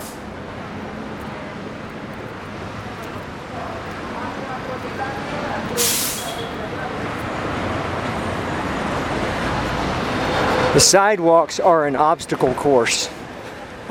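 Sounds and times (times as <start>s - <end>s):
sharp hiss of bus air brakes: 0.0s - 0.3s, 5.7s - 6.6s
deep drone of massive Transmilenio buses: 0.0s - 13.8s
heavy city traffic rumbling: 0.0s - 13.8s
speech: 10.8s - 13.2s.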